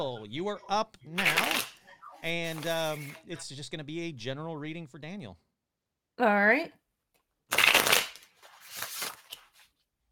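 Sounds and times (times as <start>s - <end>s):
speech: 0.0s - 5.4s, 6.2s - 6.8s
tarot card deck being shuffled for a reading: 1.2s - 3.2s, 7.5s - 9.8s.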